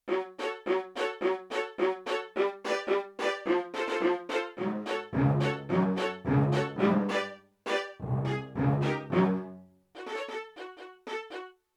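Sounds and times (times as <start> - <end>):
short bows of sampled violin orchestra: 0.1 - 11.6.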